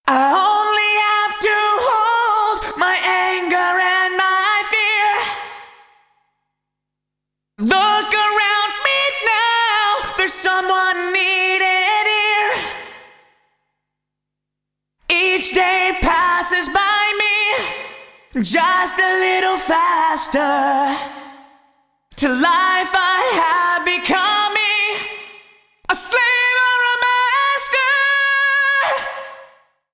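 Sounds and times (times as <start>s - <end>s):
vocals through Roland SRV 3030 Lively Room: 0.0s - 6.7s, 7.5s - 14.0s, 15.0s - 29.9s.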